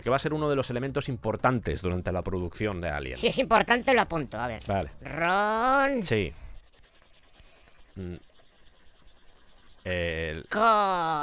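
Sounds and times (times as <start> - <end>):
speech: 0.0 - 6.4, 8.0 - 8.3, 9.8 - 11.2
pencil scribbling circles on paper: 5.9 - 11.0
person humming: 8.0 - 8.2, 10.3 - 11.2.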